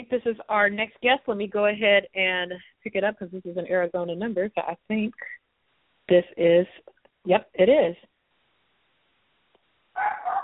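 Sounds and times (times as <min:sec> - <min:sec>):
speech: 0:00.0 - 0:05.4, 0:06.1 - 0:08.1
dog barking over a phone line: 0:10.0 - 0:10.4.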